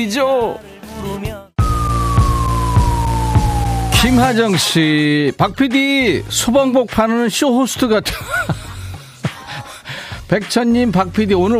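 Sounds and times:
speech: 0.0s - 1.4s, 4.0s - 8.6s, 10.3s - 11.5s
brief burst of music: 1.6s - 4.6s
ambulance siren wailing: 1.6s - 4.7s
laughter: 8.1s - 9.5s.

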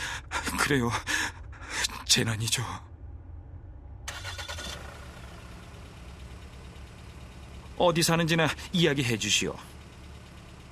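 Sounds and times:
car engine cranking, starting and rumbling idle with slight rev: 0.0s - 10.7s
speech: 0.7s - 1.1s, 2.1s - 2.9s, 7.8s - 9.7s.

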